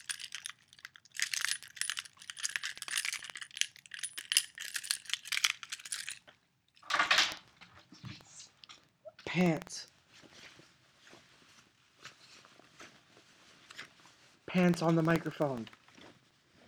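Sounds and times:
car keys jangling as a Foley sound effect: 0.0s - 6.2s
speech: 9.4s - 9.8s, 14.6s - 15.8s.

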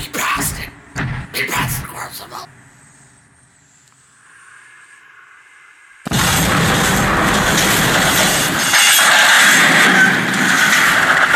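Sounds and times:
dramatized express train crashing through a wooden barrier into a ravine: 6.1s - 11.3s.

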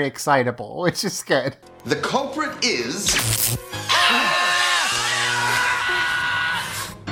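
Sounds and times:
speech: 0.0s - 4.3s
man screaming: 3.8s - 7.0s.

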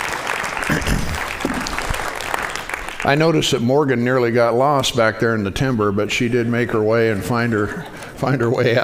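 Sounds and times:
room full of people applauding: 0.0s - 3.6s
speech: 3.0s - 8.8s.

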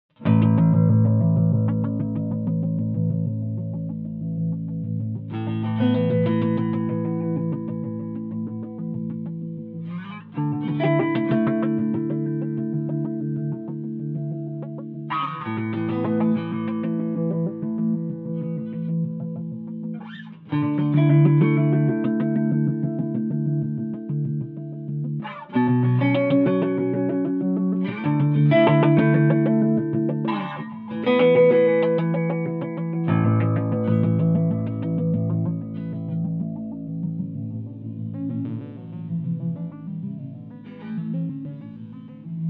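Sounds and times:
Fender bass sequence: 0.2s - 19.9s, 21.0s - 42.4s.

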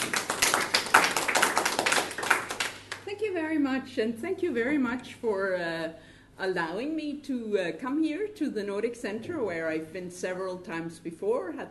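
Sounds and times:
crowd applauding: 0.0s - 3.0s
speech: 3.5s - 11.6s.

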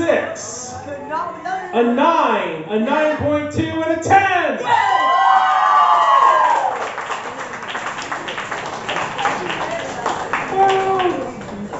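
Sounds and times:
speech: 0.1s - 5.1s
crowd cheering and whooping: 4.6s - 7.4s
audience applauding for a poet: 5.0s - 11.7s.

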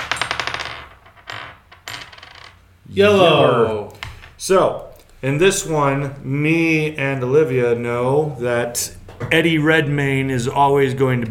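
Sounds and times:
dice rolling across a hard surface during a party game: 0.0s - 2.6s
speech: 2.9s - 3.8s, 4.4s - 11.3s.

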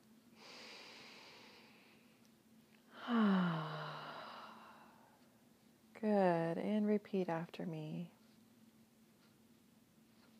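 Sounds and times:
slow deep breath drawn in: 0.4s - 2.0s, 2.9s - 5.2s
speech: 6.0s - 8.2s.

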